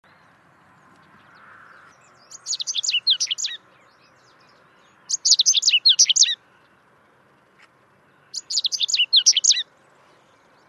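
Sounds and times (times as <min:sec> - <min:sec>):
Correndera pipit singing high thin chirps: 0:02.1 - 0:06.4, 0:08.2 - 0:09.8.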